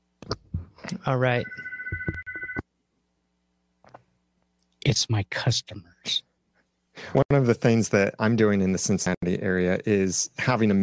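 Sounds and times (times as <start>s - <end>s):
speech: 1.0s - 1.6s, 4.9s - 6.3s, 7.0s - 10.8s
phone ringing with an electronic trill: 1.4s - 2.6s.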